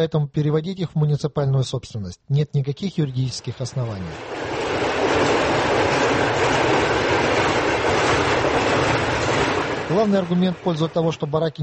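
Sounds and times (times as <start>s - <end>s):
speech: 0.0s - 4.6s, 9.9s - 11.6s
train passing barracks housing in the Sovetsky district: 3.3s - 11.4s
train wheels clickety-clack on rails: 3.8s - 11.2s.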